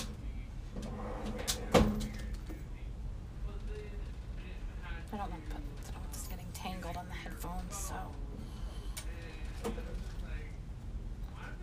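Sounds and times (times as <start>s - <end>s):
steady low hum: 0.0s - 11.6s
drawer opening and closing: 0.7s - 2.4s.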